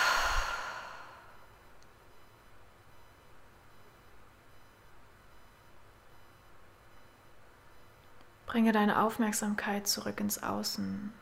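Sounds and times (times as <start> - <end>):
deep slow breath out through the mouth after a breath in through the nose: 0.0 - 1.4
speech: 8.5 - 11.2.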